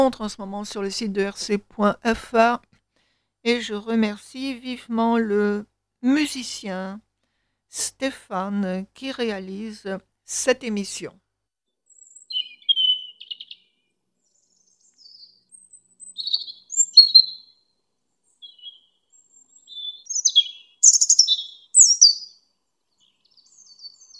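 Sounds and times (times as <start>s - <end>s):
speech: 0.0s - 2.7s, 3.4s - 7.0s, 7.7s - 11.2s
European robin singing: 11.9s - 24.1s.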